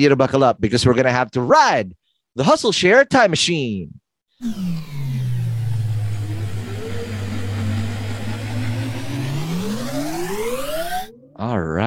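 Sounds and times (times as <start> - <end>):
speech: 0.0 - 5.2, 11.4 - 11.8
car engine at speed on the Autobahn: 4.4 - 11.1.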